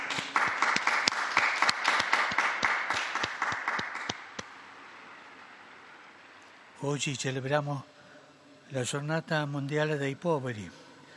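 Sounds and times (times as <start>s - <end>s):
large crowd applauding newly beatified martyrs: 0.0s - 4.4s
speech: 6.8s - 8.0s, 8.7s - 10.8s.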